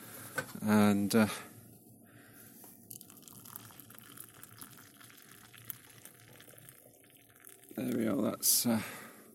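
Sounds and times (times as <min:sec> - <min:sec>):
speech: 0:00.6 - 0:01.5, 0:07.8 - 0:09.0
freshly brewed coffee pouring into a cup: 0:02.8 - 0:08.4.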